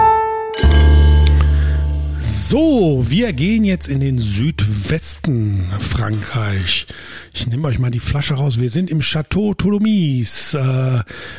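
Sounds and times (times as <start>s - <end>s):
radio jingle with glassy clink and chime-like tones: 0.6s - 4.9s
speech: 2.5s - 11.3s.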